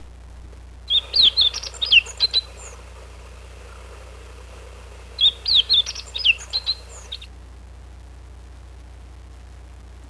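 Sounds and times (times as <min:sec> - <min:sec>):
meadow bunting: 0:00.8 - 0:07.3.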